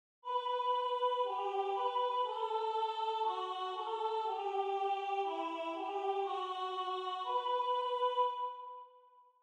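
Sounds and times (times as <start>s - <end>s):
third voice of a four-voice choral arrangement singing: 0.3s - 8.6s.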